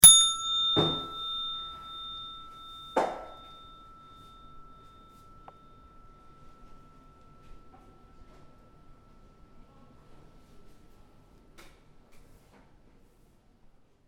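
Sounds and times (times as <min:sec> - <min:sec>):
doorbell ringing: 0:00.0 - 0:11.0.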